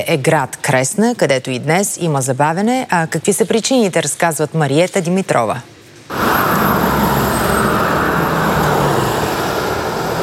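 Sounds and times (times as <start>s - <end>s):
speech: 0.0s - 6.2s
cars passing in heavy road traffic: 6.1s - 10.2s
heavy trucks rolling past in dense road traffic: 6.1s - 10.2s.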